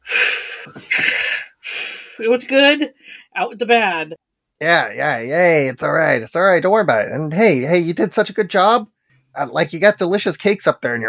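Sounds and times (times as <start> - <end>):
deep audible breathing: 0.0 - 2.2
speech: 0.6 - 1.1, 2.2 - 11.0.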